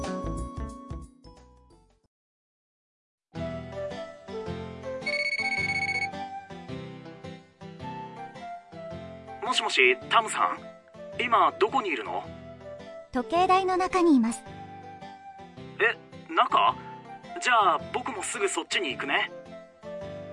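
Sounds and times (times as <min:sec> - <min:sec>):
melodic electronic phone ringtone: 0:05.0 - 0:06.2
speech: 0:09.5 - 0:12.4, 0:13.2 - 0:14.6, 0:15.8 - 0:16.8, 0:17.4 - 0:19.4.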